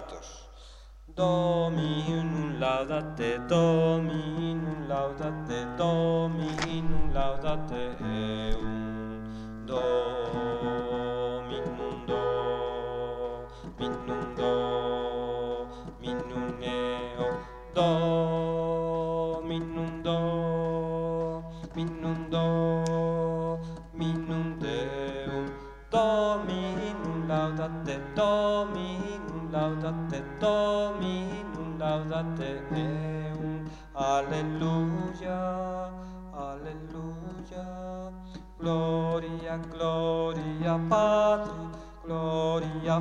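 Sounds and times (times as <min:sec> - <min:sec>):
alto singing a Gloria: 0:01.1 - 0:42.9.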